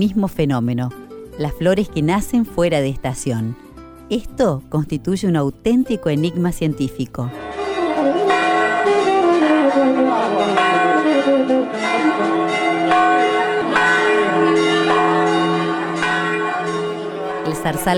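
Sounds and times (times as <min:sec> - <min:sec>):
speech: 0:00.0 - 0:07.4, 0:11.3 - 0:13.1, 0:17.6 - 0:17.9
church bells pealing at a sanctuary in Italy: 0:07.3 - 0:17.9.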